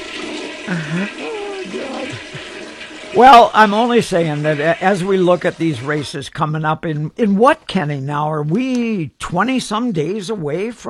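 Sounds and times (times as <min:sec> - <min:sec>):
toilet flushing: 0:00.0 - 0:06.5
speech: 0:00.7 - 0:10.8.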